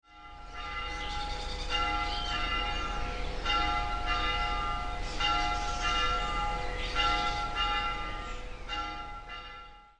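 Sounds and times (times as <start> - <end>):
church bells ringing in Avila: 0.0 - 9.9.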